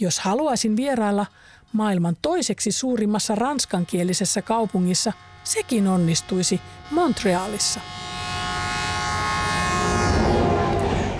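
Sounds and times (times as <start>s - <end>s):
speech: 0.0s - 8.2s
passenger train horn: 3.6s - 11.1s
passenger train rolling along the tracks across Canada: 9.6s - 11.1s.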